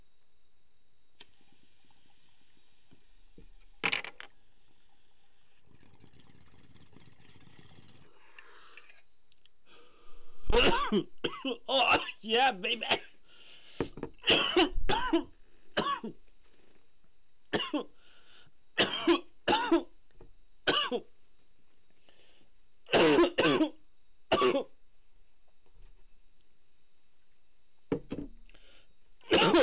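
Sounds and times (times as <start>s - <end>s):
person coughing: 10.4s - 13.2s, 14.2s - 16.2s, 17.6s - 17.9s, 18.8s - 19.9s, 20.7s - 21.0s, 22.9s - 24.7s, 29.3s - 29.6s
speech: 10.6s - 13.1s.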